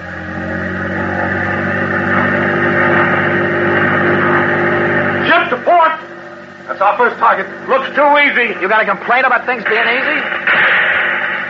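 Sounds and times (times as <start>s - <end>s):
boat engine at full throttle during an attack on troop ships: 0.0s - 8.6s
speech: 7.2s - 10.4s.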